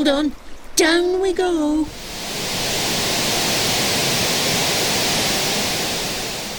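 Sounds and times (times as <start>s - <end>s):
speech: 0.0s - 2.2s
rushing waterfall: 1.9s - 6.5s.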